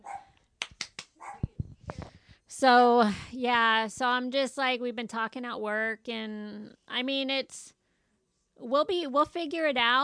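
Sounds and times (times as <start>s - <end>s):
dog barking: 0.0s - 0.4s, 1.2s - 1.5s
speech: 2.5s - 7.8s, 8.6s - 10.0s.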